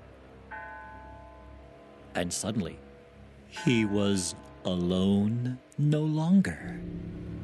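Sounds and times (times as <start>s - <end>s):
faint steady hum: 0.0s - 7.4s
bell of a tiny church on a hill striking: 0.5s - 5.4s
speech: 2.2s - 2.9s, 3.5s - 7.3s.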